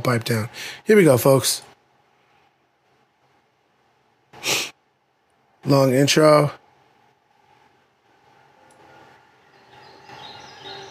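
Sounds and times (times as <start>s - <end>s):
speech: 0.0s - 1.7s, 5.6s - 6.6s
soft steady ambient hum: 0.0s - 10.8s
birds chirping in short high twitters: 8.8s - 10.8s.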